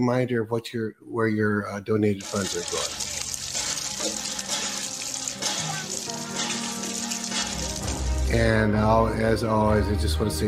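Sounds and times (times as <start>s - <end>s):
speech: 0.0s - 3.0s, 8.3s - 10.4s
fresh water pouring from a drilled well: 2.2s - 8.6s.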